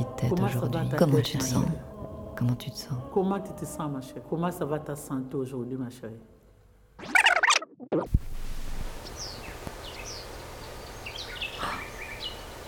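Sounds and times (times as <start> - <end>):
speech: 0.2 - 6.3
birds chirping outdoors: 8.9 - 12.6.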